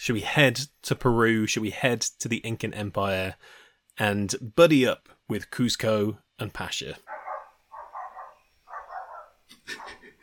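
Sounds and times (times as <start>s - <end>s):
speech: 0.0s - 7.2s
dog barking in the neighborhood: 7.0s - 10.0s.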